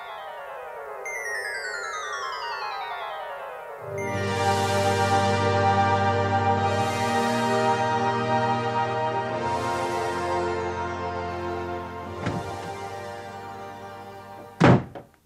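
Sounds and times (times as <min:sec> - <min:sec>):
sustained musical drone: 0:00.0 - 0:14.6
door bursting open with a dull thud: 0:12.1 - 0:13.2, 0:14.5 - 0:15.1.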